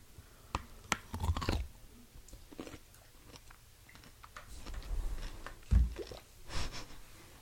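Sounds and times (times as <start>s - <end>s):
chewing a bite of pickle with crisp crunches: 0.8s - 6.3s.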